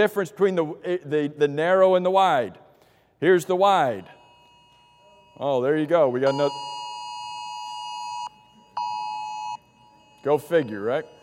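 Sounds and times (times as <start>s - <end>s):
speech: 0.0s - 2.6s, 3.2s - 4.2s, 5.4s - 6.7s, 10.2s - 11.2s
phone alert beeping in long electronic tones: 4.2s - 11.2s.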